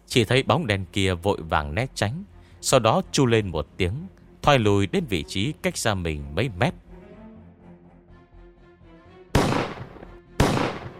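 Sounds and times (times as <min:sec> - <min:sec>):
speech: 0:00.1 - 0:06.8
loud gunshots: 0:09.4 - 0:10.9.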